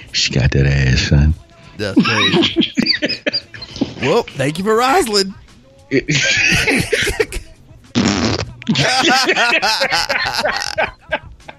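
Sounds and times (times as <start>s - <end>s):
speech: 0.1s - 3.4s, 4.0s - 7.4s, 8.8s - 11.3s
people laughing: 1.8s - 4.4s, 5.9s - 7.5s, 8.7s - 11.5s
excited voices: 1.8s - 5.3s, 5.9s - 7.5s, 8.6s - 11.5s
loud sputtering fart sound: 8.0s - 8.7s.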